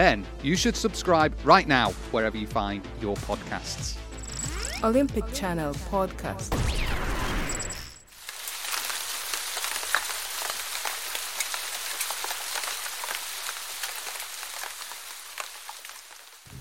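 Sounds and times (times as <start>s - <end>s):
speech: 0.0s - 4.0s, 4.8s - 6.9s
steady rain pouring down outdoors: 8.1s - 16.5s.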